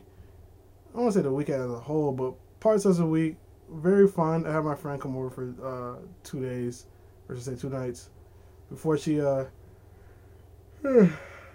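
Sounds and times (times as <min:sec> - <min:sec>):
quiet low hum: 0:00.0 - 0:11.5
speech: 0:01.0 - 0:09.6, 0:10.8 - 0:11.3
single short yawn: 0:10.8 - 0:11.5.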